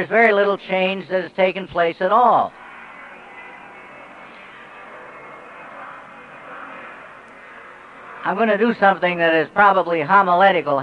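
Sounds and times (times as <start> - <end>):
speech: 0.0 - 2.6, 8.2 - 10.8
airplane flying overhead: 2.5 - 9.6.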